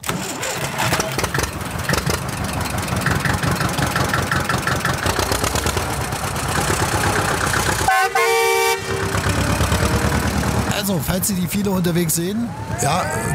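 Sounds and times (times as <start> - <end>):
diesel tractor engine cranking and chugging: 0.0 - 13.3
horn toot: 7.9 - 10.3
speech: 11.2 - 13.3.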